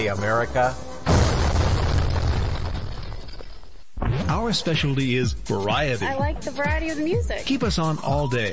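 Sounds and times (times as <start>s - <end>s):
speech: 0.0s - 0.9s, 4.3s - 8.5s
loud booming fireworks explosion with deep rumble: 1.0s - 4.2s.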